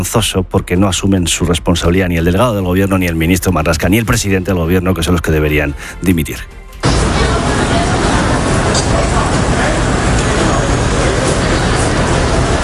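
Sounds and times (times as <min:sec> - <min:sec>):
speech: 0:00.0 - 0:06.6
morning street traffic in Manhattan, New York: 0:06.8 - 0:12.6
murmur of voices: 0:06.8 - 0:12.6.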